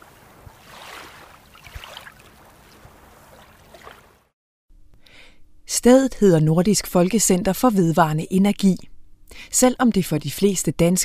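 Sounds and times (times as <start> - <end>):
waves washing against the shore: 0.0 - 4.2
speech: 5.8 - 11.0.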